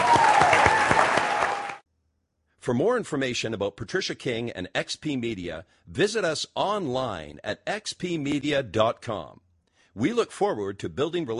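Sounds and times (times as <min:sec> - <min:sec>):
audience clapping at a worship gathering: 0:00.0 - 0:01.8
speech: 0:02.6 - 0:09.4, 0:10.0 - 0:11.3.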